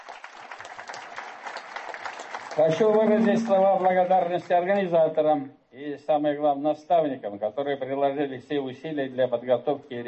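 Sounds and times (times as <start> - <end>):
audience applauding finalist teams at a youth competition: 0.0 - 4.5
speech: 2.6 - 10.0.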